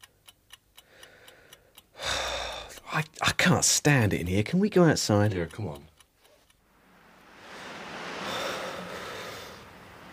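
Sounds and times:
clock ticking: 0.0 - 7.1
speech: 3.0 - 5.9
loud breathy rush of noise: 6.6 - 10.1.

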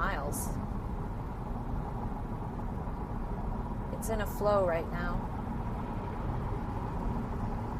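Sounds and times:
road rumble and tire hum inside an electric car cruising on a highway: 0.0 - 7.7
speech: 4.0 - 5.4.

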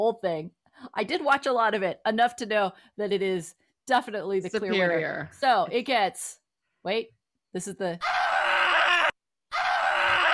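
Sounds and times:
speech: 0.0 - 8.2
screaming: 8.0 - 10.3.

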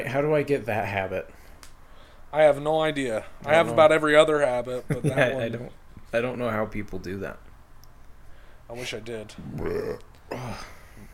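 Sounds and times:
speech: 0.0 - 1.4, 2.3 - 7.5, 8.7 - 10.8
gulping: 9.3 - 10.7
throaty burp after drinking soda: 9.4 - 10.7.

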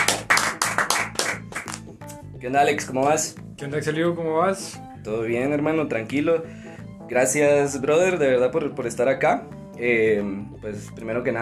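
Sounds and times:
small group clapping to welcome a guest: 0.0 - 2.0
low droning musical backing: 0.0 - 11.4
speech: 2.4 - 11.4.

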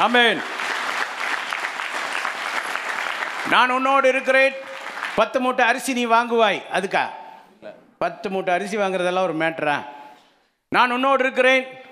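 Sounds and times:
speech: 0.0 - 0.6, 3.5 - 4.6, 5.2 - 10.0, 10.7 - 11.8
church audience clapping hands during a sermon: 0.0 - 5.4.

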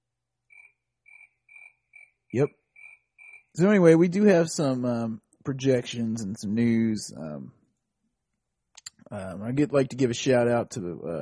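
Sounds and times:
crickets chirping: 0.4 - 3.6
speech: 2.3 - 2.6, 3.6 - 7.6, 9.1 - 11.1.

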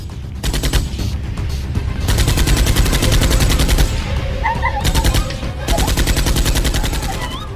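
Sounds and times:
rapid automatic gunfire: 0.4 - 1.0, 2.0 - 4.1, 4.8 - 7.5
laughter: 3.9 - 7.5.

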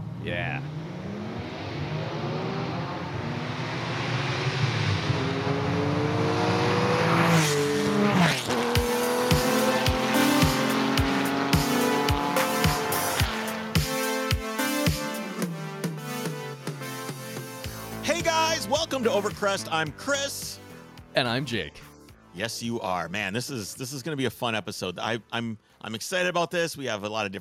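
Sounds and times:
car tires screeching: 0.0 - 13.8
car engine roaring and revving: 0.0 - 18.0
speech: 0.2 - 0.8, 18.9 - 20.5, 21.2 - 27.3
punchy music track with a steady kick-drum beat: 8.7 - 19.4.

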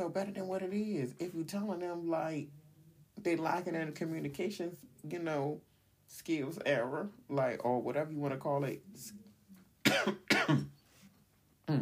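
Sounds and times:
speech: 0.0 - 2.6, 3.2 - 9.2, 9.9 - 10.7, 11.7 - 11.8
person coughing harshly: 9.8 - 10.8.

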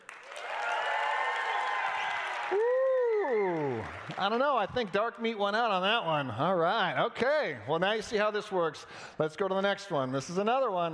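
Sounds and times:
audience cheering and applauding: 0.0 - 5.0
person whooping with a long sliding whoop: 2.5 - 3.9
speech: 4.2 - 10.9.

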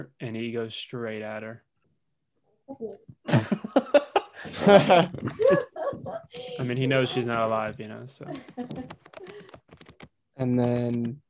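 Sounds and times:
speech: 0.0 - 1.7, 2.7 - 9.5, 10.4 - 11.2
laughter: 3.3 - 9.5
loud typing on a computer keyboard: 8.3 - 10.1.

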